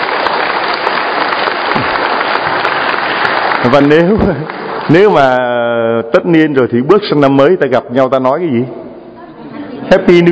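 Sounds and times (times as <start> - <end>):
large crowd applauding at a church community gathering: 0.0 - 5.8
speech: 3.6 - 8.8, 9.9 - 10.2.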